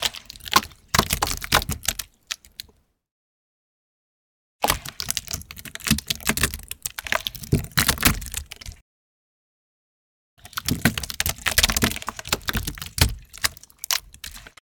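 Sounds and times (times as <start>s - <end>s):
guts flowing on a wood surface: 0.0s - 2.8s, 4.6s - 8.8s, 10.4s - 14.6s.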